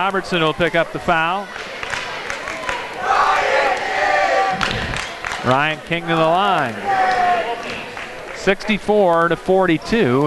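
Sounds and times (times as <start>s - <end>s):
speech: 0.0s - 1.7s, 5.4s - 10.2s
gymnasium crowd roaring and cheering at a basketball game: 0.0s - 10.2s
scattered shouts: 1.1s - 8.0s.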